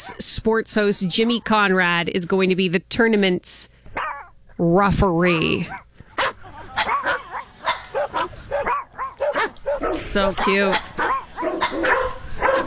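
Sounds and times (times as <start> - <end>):
speech: 0.0 - 5.8, 10.0 - 10.9
several dogs barking and yipping: 4.0 - 4.4, 5.6 - 12.6.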